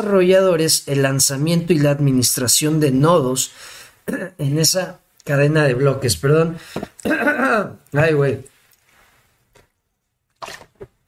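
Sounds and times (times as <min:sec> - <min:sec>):
speech: 0:00.0 - 0:08.5
person sipping water: 0:10.3 - 0:11.0.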